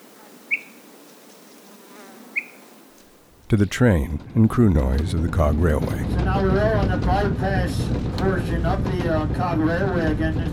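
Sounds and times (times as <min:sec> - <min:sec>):
insects chirping on the summit of Mount Israel in the White Mountains: 0:00.0 - 0:03.4
faint steady outdoor hiss on a mountain summit: 0:00.0 - 0:03.6
speech: 0:03.5 - 0:10.5.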